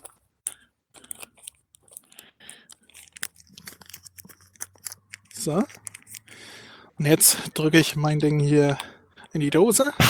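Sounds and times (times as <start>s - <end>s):
paper receipt being folded and wrapped around a roll: 0.0s - 6.6s
speech: 5.4s - 5.9s, 7.0s - 10.0s.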